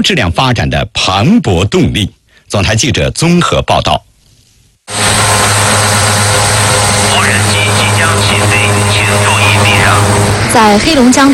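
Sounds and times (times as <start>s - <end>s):
speech: 0.0s - 4.1s, 10.5s - 11.3s
inspection drone flying over an oilfield in Heilongjiang, China: 4.9s - 11.3s.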